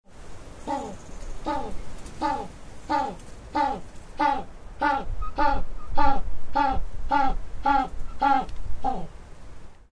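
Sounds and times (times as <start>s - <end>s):
penguin calling: 0.7s - 9.1s.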